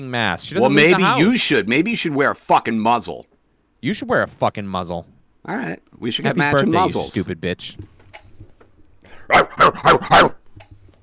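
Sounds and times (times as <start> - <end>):
speech: 0.0 - 7.9, 9.3 - 10.3
person imitating a dog growling and barking: 9.2 - 10.4.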